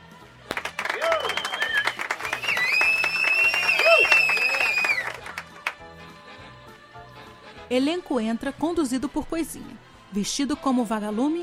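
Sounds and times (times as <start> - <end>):
audience applauding the cast: 0.5 - 5.8
crowd whooping: 0.8 - 5.2
shrill whistles from the crowd: 0.8 - 5.2
speech: 7.7 - 11.4.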